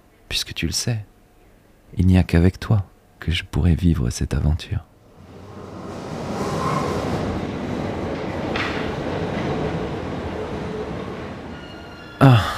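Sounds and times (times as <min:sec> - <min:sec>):
speech: 0:00.3 - 0:01.1, 0:01.9 - 0:04.9
metro train rumbling into the station: 0:04.9 - 0:12.5.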